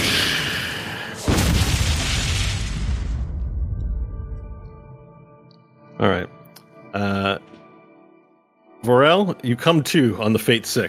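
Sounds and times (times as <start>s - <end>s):
tent engulfed in a fireball exploding with deep boom: 0.0s - 4.5s
speech: 6.0s - 6.3s, 8.9s - 10.8s.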